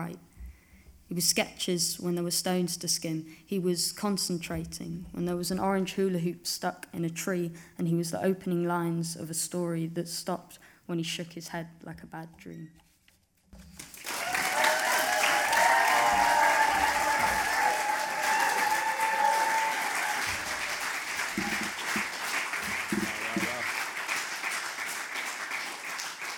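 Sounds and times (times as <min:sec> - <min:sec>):
speech: 0:00.0 - 0:00.3, 0:01.1 - 0:12.8
audience applause after a poetry reading: 0:13.8 - 0:26.3
cheers: 0:13.9 - 0:26.3.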